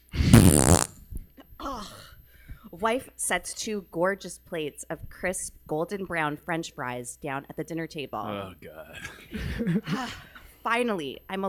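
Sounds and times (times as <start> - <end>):
loud sputtering fart from a husband leaving after a domestic argument: 0.1 - 1.0
speech: 2.8 - 11.4.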